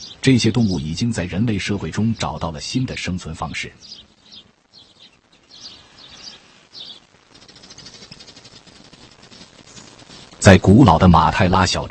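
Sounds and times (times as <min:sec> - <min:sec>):
sparrows chirping: 0:00.0 - 0:11.0
steady hiss of outdoor noise: 0:00.0 - 0:11.8
speech: 0:00.2 - 0:04.2, 0:10.5 - 0:11.8.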